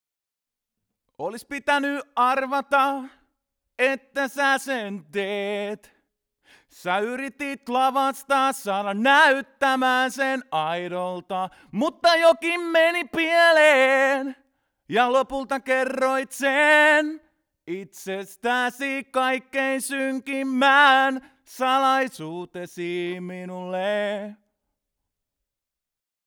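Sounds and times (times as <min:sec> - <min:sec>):
male vocal: 0:01.2 - 0:06.0, 0:06.6 - 0:24.4.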